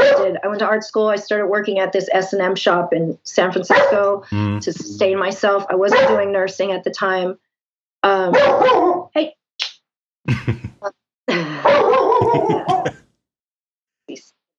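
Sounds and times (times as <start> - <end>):
speech: 0.6 - 7.4, 8.0 - 9.4
dog barking and yipping: 3.7 - 4.0, 5.9 - 6.2, 8.3 - 9.1, 11.6 - 12.9
laughter: 4.3 - 5.1, 6.0 - 6.3, 10.3 - 13.0.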